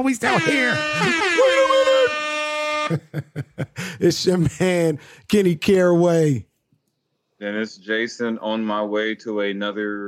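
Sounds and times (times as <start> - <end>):
laughter: 0.0 - 2.2, 2.9 - 4.8
speech: 0.0 - 2.2, 2.9 - 6.5, 7.4 - 10.0
loud brassy air horn blast: 0.2 - 3.0.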